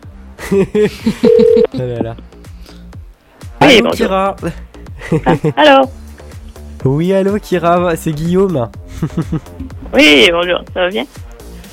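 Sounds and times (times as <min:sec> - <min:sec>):
laughter: 0:00.4 - 0:02.2, 0:05.0 - 0:05.6, 0:08.9 - 0:09.6
speech: 0:00.5 - 0:02.4, 0:03.6 - 0:06.0, 0:06.8 - 0:11.2
phone line ringback tone of a Canadian call: 0:01.2 - 0:01.7.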